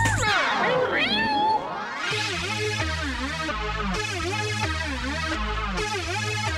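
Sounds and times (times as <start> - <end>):
pulsing electronic dance beat with chopped meow-like samples: 0.0 - 6.5
sweeping pitch-bending cat meows: 0.2 - 1.8.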